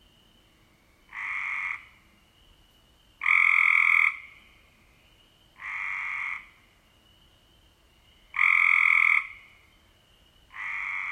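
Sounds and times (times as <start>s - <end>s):
Cope's gray treefrog calling with a harsh buzzing trill: 1.1s - 2.0s, 3.2s - 4.5s, 5.6s - 6.7s, 8.3s - 9.7s, 10.5s - 11.0s.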